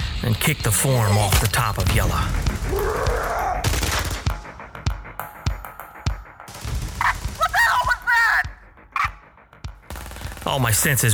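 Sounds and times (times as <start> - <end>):
speech: 0.2 - 3.4, 10.5 - 11.1
gunfire sound effect shots: 1.4 - 5.2, 6.5 - 8.2, 9.9 - 11.0
steady din: 2.3 - 10.4.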